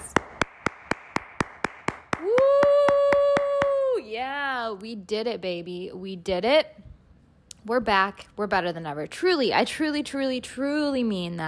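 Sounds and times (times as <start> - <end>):
single person clapping hands: 0.0 - 3.8
speech: 4.7 - 6.9, 7.6 - 11.4.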